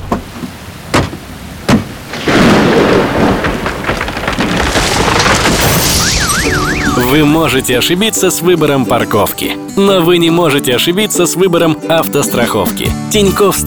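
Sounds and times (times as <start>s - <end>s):
heavy rain: 0.0s - 8.1s
speech: 7.1s - 13.6s.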